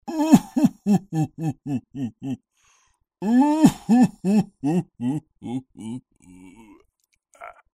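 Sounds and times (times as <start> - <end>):
person weeping laugh: 0.1 - 2.4, 3.2 - 6.8.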